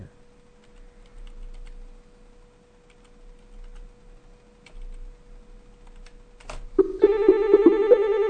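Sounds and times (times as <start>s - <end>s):
quiet hum: 0.0s - 8.2s
telephone ringing with a rapid electronic trill for an incoming call: 6.8s - 8.2s.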